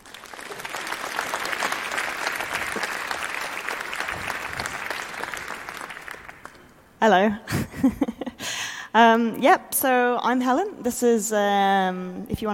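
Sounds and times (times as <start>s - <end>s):
audience clapping as a speaker is introduced: 0.0s - 6.8s
speech: 7.0s - 8.2s, 9.0s - 12.5s.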